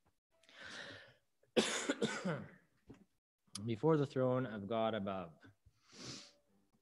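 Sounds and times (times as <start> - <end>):
person coughing from a throat tickle: 1.6 - 2.6
speech: 1.6 - 2.6, 3.6 - 5.4.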